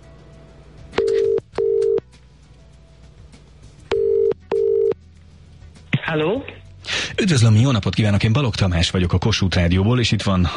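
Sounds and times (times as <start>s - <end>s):
electronic telephone dialing tones on a phone line: 1.0s - 2.0s, 3.9s - 5.0s
speech: 6.1s - 6.6s, 7.2s - 10.5s.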